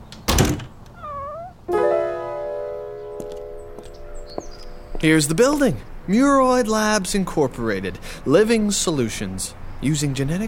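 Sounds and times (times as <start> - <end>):
cat meowing indoors: 1.0 - 1.7
long steady drawn-out tone: 1.7 - 5.0
speech: 5.0 - 10.4.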